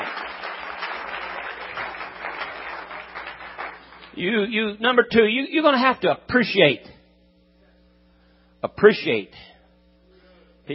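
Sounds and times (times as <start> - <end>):
crowd clapping: 0.0 - 4.2
speech: 4.2 - 6.9, 8.8 - 9.5.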